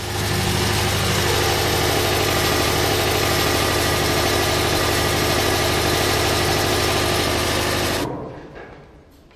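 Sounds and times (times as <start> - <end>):
large biogas combined heat and power engine burning methane in Wildpolsried, Allgäu: 0.0 - 8.4.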